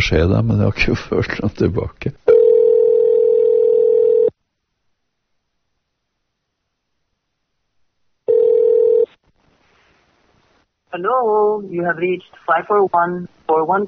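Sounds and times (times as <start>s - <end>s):
speech: 0.0s - 2.4s, 10.9s - 13.8s
telephone ringback tone during an outgoing call: 2.3s - 4.3s, 8.3s - 9.1s.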